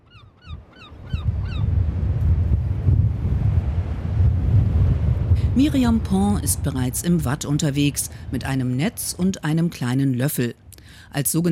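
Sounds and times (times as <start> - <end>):
high bird calls: 0.0 - 1.7
strong wind buffeting microphone on an open beach at low tide: 0.4 - 11.5
speech: 5.6 - 11.5.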